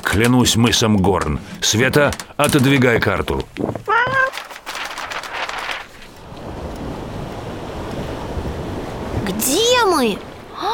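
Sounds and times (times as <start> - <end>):
bursts of crashing water: 0.0 - 9.3
speech: 0.1 - 4.5, 9.4 - 10.3
high wailing call: 3.9 - 4.4
grey Pacific Ocean surf washing against a rocky shore of the Commander Islands: 5.3 - 10.7.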